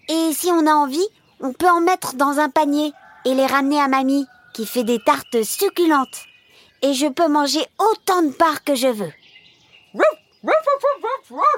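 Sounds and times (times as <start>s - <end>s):
speech: 0.4s - 9.2s, 10.0s - 11.5s
large white and beige dog barking: 10.0s - 11.5s.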